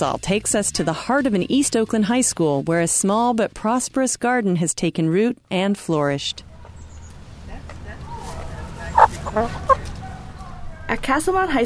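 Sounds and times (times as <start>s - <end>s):
speech: 0.0s - 6.5s, 9.4s - 9.8s, 10.9s - 11.6s
chickens clucking in a school garden: 8.0s - 10.6s.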